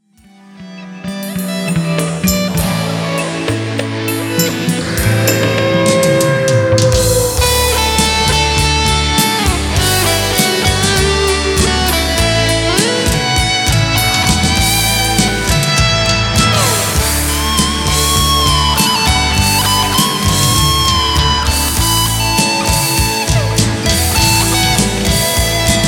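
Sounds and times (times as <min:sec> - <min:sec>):
guitar solo: 0:00.2 - 0:25.8.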